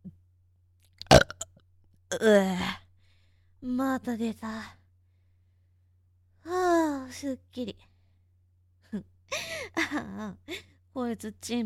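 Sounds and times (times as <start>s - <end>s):
loud resonant burp: 1.0s - 1.5s
speech: 2.1s - 2.8s, 3.6s - 4.8s, 7.1s - 7.7s, 8.9s - 9.1s, 10.2s - 11.6s.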